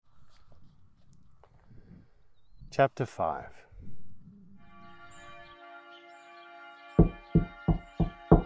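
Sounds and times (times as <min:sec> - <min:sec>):
speech: 0:02.8 - 0:03.6
firm knocking on a door: 0:07.0 - 0:08.4.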